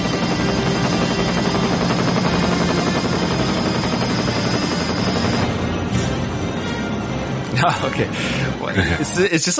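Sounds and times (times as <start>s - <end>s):
helicopter rotor blades thudding in a film scene: 0.0s - 6.5s
speech: 7.6s - 9.5s.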